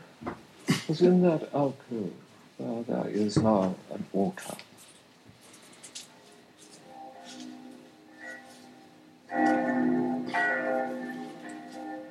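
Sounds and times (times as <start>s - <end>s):
speech: 0.9s - 4.7s
church clock bells in Florence chiming at midday: 6.9s - 12.0s.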